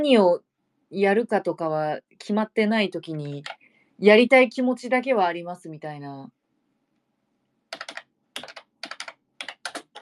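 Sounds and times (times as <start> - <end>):
speech: 0.0 - 6.4
loud clacky computer keyboard typing: 3.1 - 3.6, 7.7 - 10.0.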